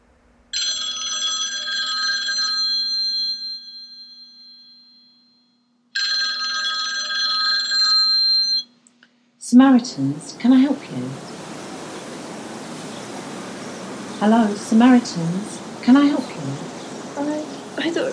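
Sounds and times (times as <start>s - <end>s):
telephone ringing with trilling bell tone: 0.6s - 8.8s
speech: 9.5s - 11.4s, 14.2s - 18.1s.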